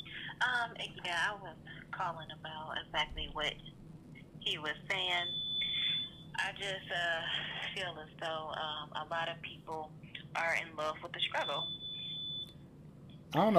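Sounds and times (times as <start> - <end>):
person talking over a phone line: 0.1 - 3.5, 4.5 - 11.6, 13.4 - 13.5
high-pitched electronic beep on a phone line: 5.0 - 6.2, 11.2 - 12.5.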